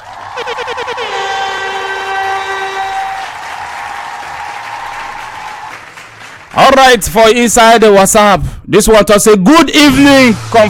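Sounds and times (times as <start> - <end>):
steady crowd applause: 0.0 - 7.0
loud horn-like tone pulsing: 0.1 - 3.4
speech: 6.6 - 10.6.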